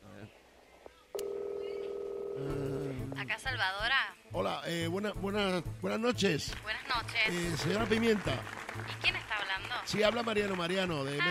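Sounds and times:
telephone keypad tones as a number is dialed: 1.2 - 2.4
speech: 2.4 - 11.2.

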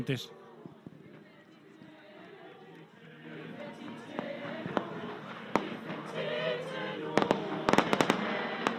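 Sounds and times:
speech: 0.0 - 0.4
people singing: 0.2 - 8.7
fireworks bangs bursting outdoors: 0.6 - 8.7.

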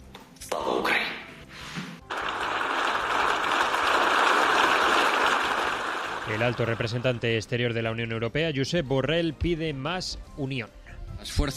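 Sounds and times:
parliament members applauding: 2.1 - 7.5
speech: 6.3 - 11.5.

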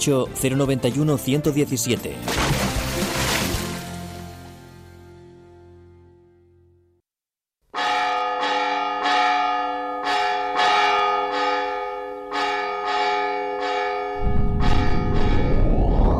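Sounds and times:
speech: 0.0 - 2.8
large bells ringing: 7.8 - 16.1.

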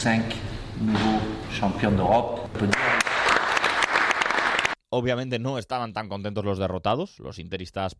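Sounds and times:
speech: 0.0 - 3.0, 4.9 - 7.9
group applauding winners at team dinner: 2.6 - 4.8.

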